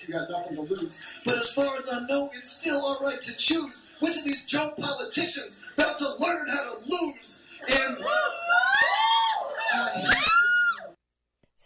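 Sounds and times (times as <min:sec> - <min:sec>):
speech: 0:00.0 - 0:08.9, 0:09.7 - 0:10.4
several men screeching in an audience: 0:07.6 - 0:10.9.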